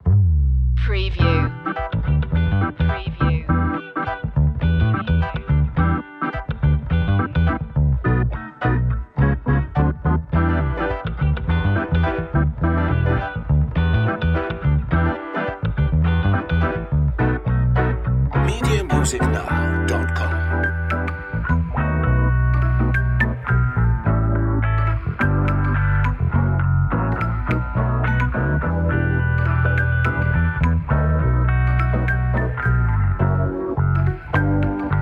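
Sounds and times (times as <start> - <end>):
funky groovy music without drums: 0.0 - 35.0.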